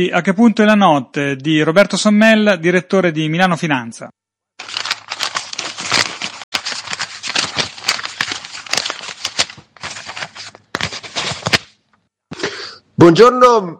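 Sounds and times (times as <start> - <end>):
speech: 0.0 - 4.8, 13.0 - 13.7
paper utility bills rustling and crinkling: 4.6 - 11.8.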